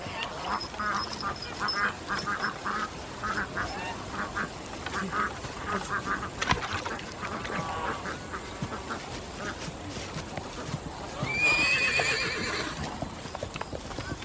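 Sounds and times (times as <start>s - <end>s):
clattering hoofbeats: 0.0s - 14.2s
horse whinnying in a courtyard: 11.2s - 12.9s.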